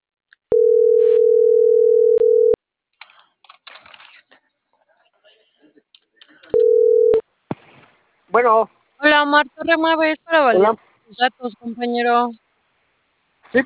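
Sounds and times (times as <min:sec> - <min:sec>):
telephone dial tone while dialing a call: 0:00.5 - 0:02.6, 0:06.6 - 0:07.2
speech: 0:08.4 - 0:12.4.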